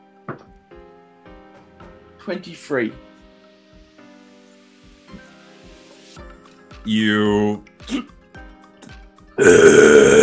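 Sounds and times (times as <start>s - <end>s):
speech: 2.3s - 3.1s, 6.8s - 8.1s, 9.4s - 9.7s
man letting out a loud deep throaty burp: 9.4s - 10.2s.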